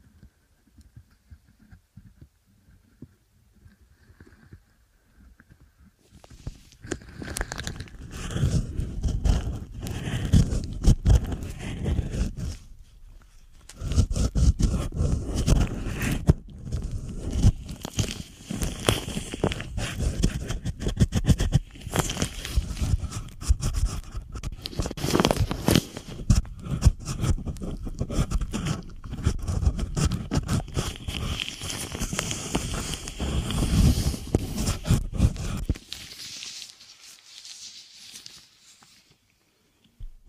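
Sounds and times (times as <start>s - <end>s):
ASMR inner ear cleaning: 6.1s - 39.2s.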